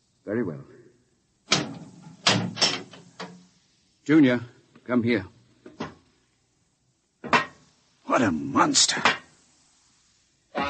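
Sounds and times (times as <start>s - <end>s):
speech: 0.3s - 0.8s, 4.1s - 5.4s, 8.2s - 9.2s
door being opened with clunks and rattles of latch and wood: 1.5s - 3.4s.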